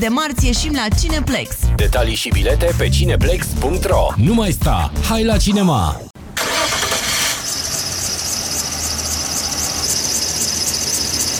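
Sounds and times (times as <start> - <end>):
speech: 0.0 - 6.1
car engine cranking without catching: 6.2 - 11.3.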